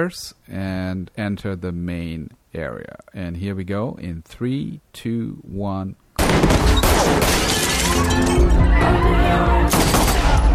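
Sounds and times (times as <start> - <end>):
speech: 0.0 - 10.0
crashing impacts: 6.2 - 8.6
rapid gunfire during a fight scene: 9.7 - 10.4.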